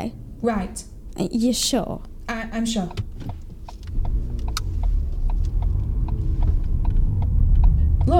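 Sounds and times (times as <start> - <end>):
speech: 0.0 - 3.4
car driving through a crossroads on a dark road at night: 0.0 - 8.1
faint regular clicking ticks: 2.9 - 8.1.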